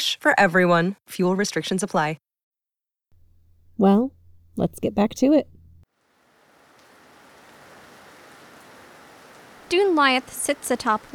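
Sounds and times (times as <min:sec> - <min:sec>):
speech: 0:00.0 - 0:02.3, 0:03.8 - 0:05.6, 0:09.7 - 0:11.1
steady rain on a sanctuary with concrete walls atop a tall hill: 0:06.0 - 0:11.1.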